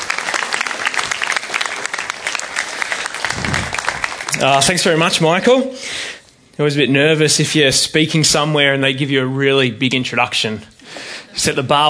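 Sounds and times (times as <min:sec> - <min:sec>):
audience applauding to welcome a speaker: 0:00.0 - 0:05.2
brief low rumble: 0:03.2 - 0:04.2
speech: 0:04.4 - 0:11.8.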